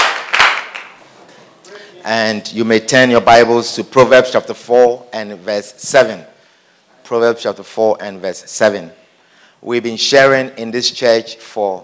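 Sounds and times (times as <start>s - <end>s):
audience clapping: 0.0s - 1.0s
speech: 2.0s - 6.3s, 7.1s - 9.0s, 9.6s - 11.8s.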